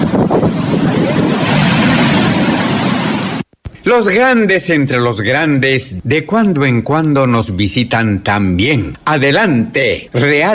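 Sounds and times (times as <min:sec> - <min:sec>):
gusty wind buffeting the microphone: 0:00.0 - 0:03.4
ocean waves breaking on the coast of Peru at dawn: 0:00.0 - 0:03.5
speech: 0:03.9 - 0:10.5.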